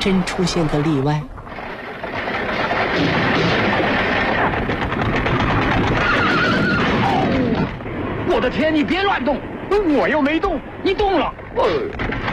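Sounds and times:
speech: 0.0s - 1.4s, 3.0s - 3.3s, 8.4s - 12.1s
horse-drawn carriage rumbling as it speeds across wasteland: 0.6s - 12.3s
horse whinnying: 5.8s - 7.8s.

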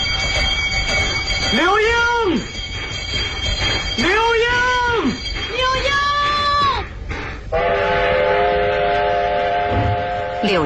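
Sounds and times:
train rumbling as it pulls away: 0.0s - 10.6s
train horn: 7.5s - 10.6s.

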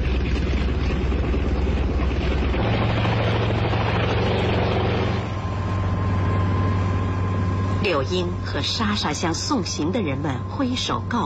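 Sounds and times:
helicopter taking off and flying away: 0.0s - 11.2s
speech: 7.9s - 11.2s.

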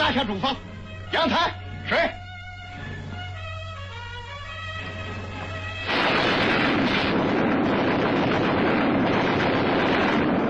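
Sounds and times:
speech: 0.1s - 2.2s
artillery fire in a battle barrage: 5.8s - 10.4s
explosions in a battle barrage: 5.8s - 10.4s.

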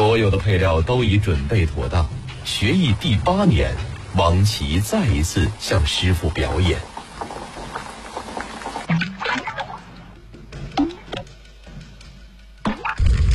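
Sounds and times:
speech: 0.2s - 6.9s
broth for a spicy red-oil fish dish bubbling over high heat: 0.3s - 10.2s.

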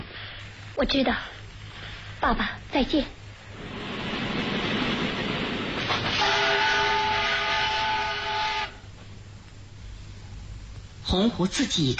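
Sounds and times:
speech: 0.8s - 1.4s, 2.2s - 3.2s, 11.1s - 11.9s
train arriving at a station, rumbling: 2.7s - 9.4s.

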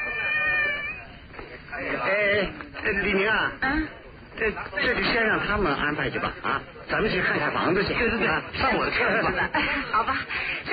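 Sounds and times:
cat meowing: 0.0s - 1.2s
speech: 1.8s - 10.7s
laughter: 9.0s - 10.7s.

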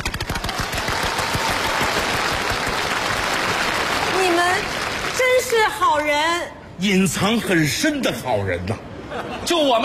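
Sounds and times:
crowd applauding loudly: 0.0s - 5.8s
speech: 5.5s - 9.8s.

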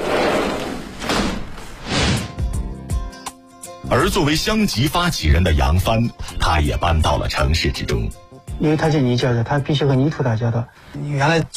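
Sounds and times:
window frames thumping and rattling as they close: 0.0s - 1.8s
windows in a piano room in a city apartment sliding shut: 0.0s - 2.3s
speech: 3.9s - 11.5s.

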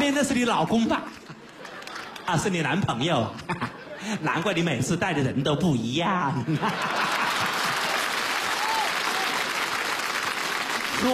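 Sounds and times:
speech: 0.2s - 1.2s, 2.3s - 7.1s
laughter: 1.2s - 4.7s, 6.3s - 8.2s
audience applause at a crosstalk comedy performance: 6.7s - 11.1s.

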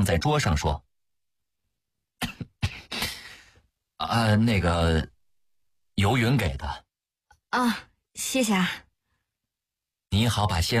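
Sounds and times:
speech: 0.0s - 0.9s, 4.0s - 5.1s, 6.0s - 6.8s, 7.5s - 8.8s, 10.1s - 10.7s
person coughing: 2.2s - 3.2s.

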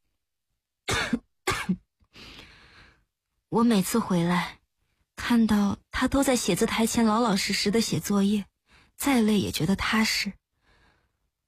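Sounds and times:
woman coughing: 0.9s - 1.8s
speech: 3.5s - 4.6s, 5.3s - 10.4s.

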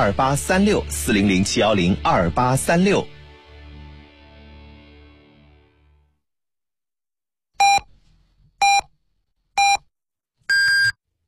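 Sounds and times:
speech: 0.0s - 3.2s
radio time signal beeps marking the hour in Beijing time: 10.5s - 11.0s.

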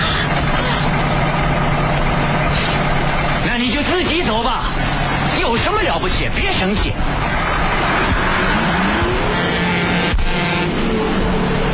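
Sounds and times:
car engine roaring as the vehicle drives off from a roadside: 0.0s - 11.7s
speech: 5.6s - 8.2s.

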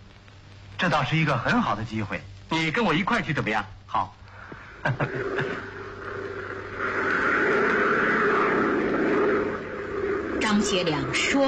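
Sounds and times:
speech: 0.8s - 4.2s, 4.8s - 5.7s, 10.5s - 11.4s
laughter: 4.7s - 6.0s
propeller airplane engine droning overhead: 5.0s - 11.4s.

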